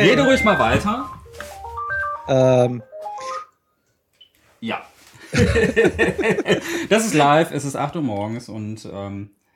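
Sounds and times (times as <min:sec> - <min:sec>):
speech: 0:00.0 - 0:01.2, 0:02.3 - 0:02.9, 0:04.6 - 0:09.4
phone ringtone with electronic melody and buzzy chord: 0:00.0 - 0:03.6
laughter: 0:05.2 - 0:07.1.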